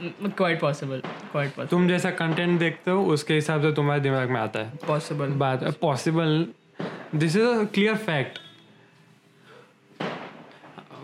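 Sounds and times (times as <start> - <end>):
firecrackers bursting outside: 0.0 - 2.9, 6.8 - 7.7, 10.0 - 10.8
speech: 0.0 - 8.4.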